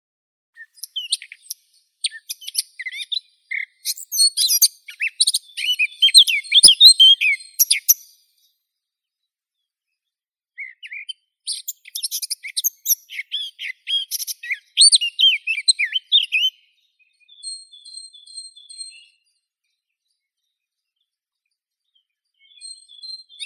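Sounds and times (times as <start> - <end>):
Sylvia atricapilla blackcap singing: 0.6 - 8.5, 10.6 - 19.2, 22.4 - 23.4.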